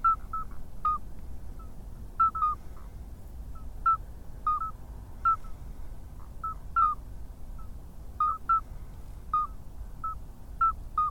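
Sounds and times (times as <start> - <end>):
midwife toad Alytes whistled calls: 0.0 - 1.0, 1.6 - 2.6, 3.6 - 5.5, 6.4 - 7.0, 7.6 - 8.7, 9.3 - 11.0.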